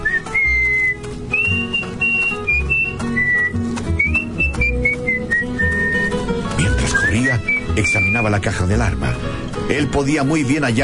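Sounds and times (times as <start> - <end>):
person whistling a melody: 0.0 - 8.3
scattered knocks and taps: 0.5 - 5.1
speech: 8.2 - 10.8.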